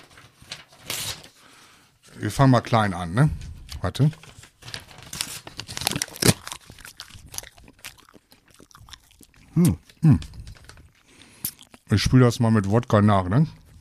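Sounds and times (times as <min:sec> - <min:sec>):
printer paper being handled and torn in half: 0:00.0 - 0:01.4, 0:04.1 - 0:07.2
speech: 0:02.2 - 0:04.3, 0:09.6 - 0:10.3, 0:11.9 - 0:13.6.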